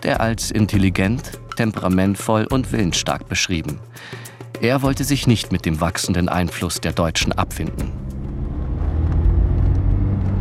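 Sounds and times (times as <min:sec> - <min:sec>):
speech: 0:00.0 - 0:08.2
car engine rumble: 0:07.3 - 0:10.3
road noise: 0:07.7 - 0:10.3.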